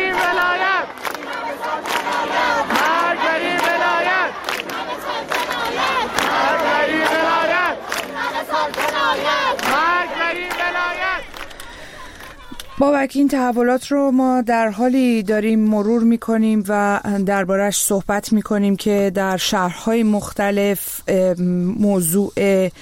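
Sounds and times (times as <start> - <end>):
large crowd chanting a protest slogan at a university: 0.0 - 13.0
speech: 12.8 - 22.8.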